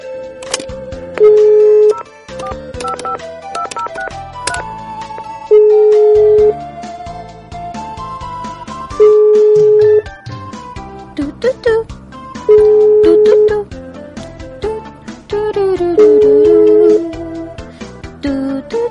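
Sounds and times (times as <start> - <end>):
busy music: 0.0 - 18.8
outgoing phone call ringback tones through the earpiece: 1.2 - 6.6, 8.9 - 10.2, 12.4 - 13.6, 16.0 - 17.0.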